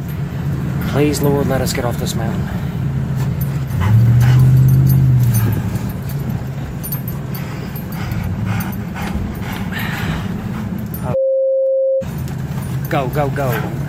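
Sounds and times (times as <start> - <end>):
moving car low engine rumble: 0.0 - 11.2, 12.0 - 13.8
road noise: 0.0 - 11.2, 12.0 - 13.8
speech: 0.9 - 2.8, 12.9 - 13.8
dog panting and whimpering in a car's back seat: 3.2 - 11.2.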